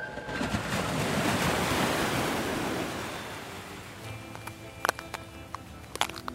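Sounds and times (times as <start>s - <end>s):
steady wash of surf: 0.1s - 4.5s
shells crunching underfoot on a beach tide line: 4.2s - 6.3s.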